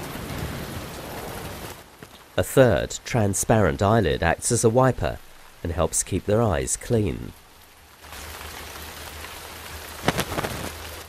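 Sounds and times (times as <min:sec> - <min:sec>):
steady rain hissing: 0:00.0 - 0:11.0
speech: 0:02.4 - 0:07.4
louder splashing bursts of rain: 0:08.0 - 0:11.0.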